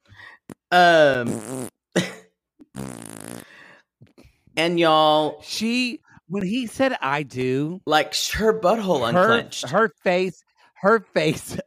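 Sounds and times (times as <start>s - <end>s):
loud fart noises made with the mouth: 0.5s - 2.0s, 2.6s - 3.6s
speech: 0.7s - 1.7s, 4.6s - 11.6s.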